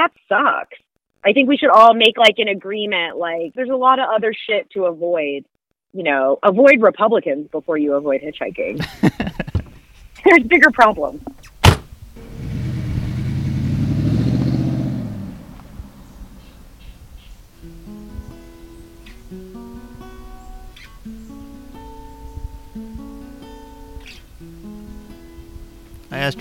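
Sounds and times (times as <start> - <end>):
speech: 0.0 - 9.4, 10.2 - 11.4, 26.1 - 26.3
laughter: 8.8 - 9.8
car engine roaring as it drives off along Route 172 beside the Saginaw River: 12.2 - 16.8.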